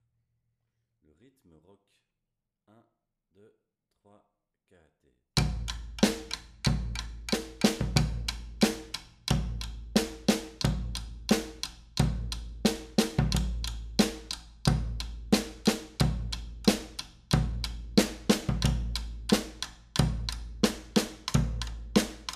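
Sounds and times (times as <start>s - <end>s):
rock batucada drumming: 5.4s - 22.3s.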